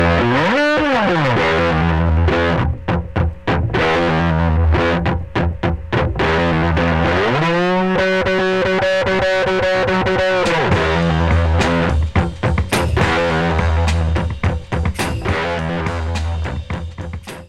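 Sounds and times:
guitar: 0.0 - 17.4
drums: 10.2 - 17.4.

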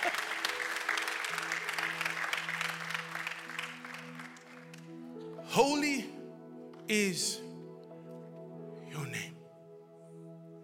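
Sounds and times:
audience applause: 0.0 - 5.0
speech: 5.6 - 6.2, 6.9 - 7.4.

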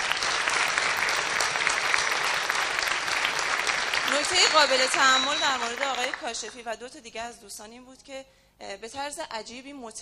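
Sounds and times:
audience applause honouring course participants: 0.0 - 6.5
speech: 4.2 - 10.0.

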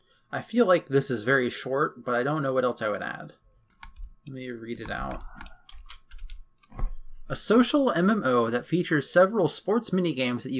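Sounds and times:
speech: 0.3 - 3.4, 4.2 - 5.5, 7.3 - 10.5
typing on a computer keyboard: 4.8 - 6.7.

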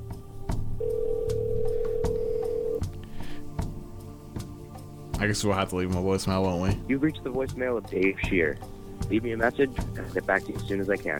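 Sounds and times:
ringback tone of an outgoing telephone call: 0.8 - 2.8
speech: 5.2 - 11.1.

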